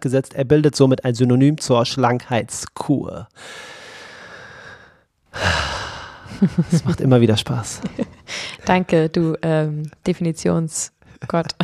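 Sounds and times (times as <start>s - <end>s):
speech: 0.0s - 3.8s, 5.3s - 5.7s, 6.4s - 11.6s
heavy breathing: 3.4s - 6.5s, 8.1s - 8.7s
laughter: 6.3s - 8.2s.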